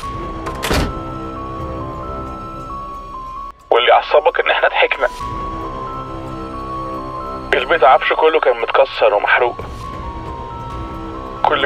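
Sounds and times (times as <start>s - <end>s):
door slamming shut by itself: 0.4s - 1.2s
speech: 3.9s - 5.5s, 7.5s - 9.8s.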